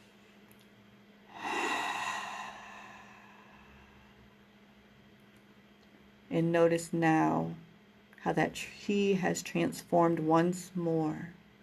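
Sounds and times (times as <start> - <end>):
deep breath in through the nose and audible exhale: 1.3 - 4.2
speech: 6.3 - 7.6, 8.2 - 11.4.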